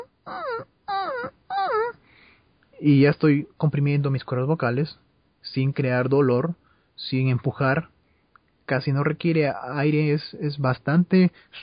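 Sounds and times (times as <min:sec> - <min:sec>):
voice imitating a crying puppy's whimpers as a vocal compression exercise: 0:00.0 - 0:02.0
speech: 0:02.8 - 0:08.0, 0:08.7 - 0:11.6.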